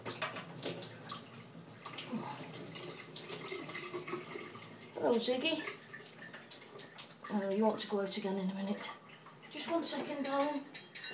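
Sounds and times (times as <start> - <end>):
water from a tumble dryer collection tray pouring into a basin: 0.0 - 7.8
speech: 5.0 - 5.8, 7.3 - 9.0, 9.7 - 10.8.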